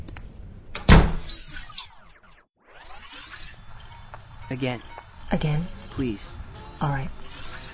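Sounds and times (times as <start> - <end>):
door shutting with a solid thud: 0.7 - 1.9
speech: 4.5 - 7.3.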